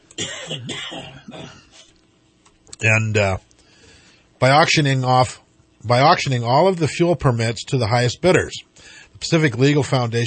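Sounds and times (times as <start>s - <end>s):
throat clearing from a tickle in the throat: 0.2s - 1.9s
speech: 0.5s - 1.9s, 2.8s - 3.5s, 4.4s - 10.2s.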